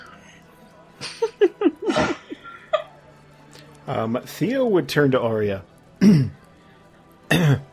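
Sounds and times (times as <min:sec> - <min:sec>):
laughter: 0:01.0 - 0:03.0
speech: 0:03.9 - 0:06.4, 0:07.3 - 0:07.7
gravelly throat clearing: 0:07.3 - 0:07.6.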